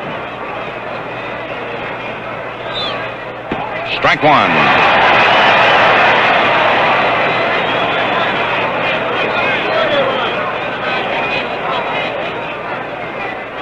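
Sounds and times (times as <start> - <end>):
large baseball stadium crowd cheering during a World Series game: 0.0 - 13.6
speech: 4.0 - 4.9.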